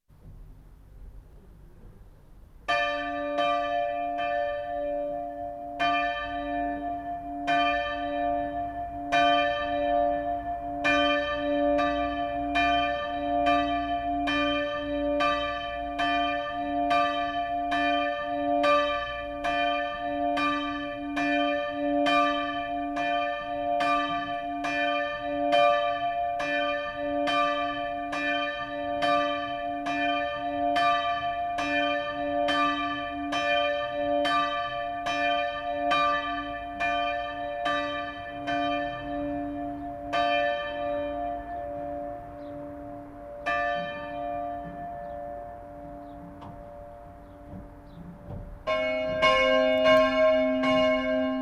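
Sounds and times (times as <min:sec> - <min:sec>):
church bells ringing: 0:02.6 - 0:51.4.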